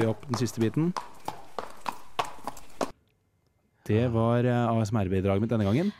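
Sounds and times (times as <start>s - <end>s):
speech: 0.0s - 1.2s, 3.9s - 5.9s
horse hooves clip-clopping on a hard surface while walking to its stable: 0.0s - 2.9s.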